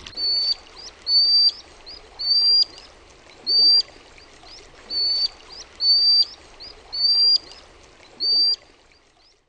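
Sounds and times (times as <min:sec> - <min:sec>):
common sandpiper whistled calls: 0:00.2 - 0:03.9, 0:04.5 - 0:07.6, 0:08.2 - 0:08.6.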